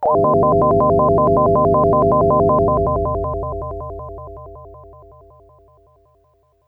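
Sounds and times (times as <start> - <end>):
UFO-like synth wave chord: 0.0 - 6.2.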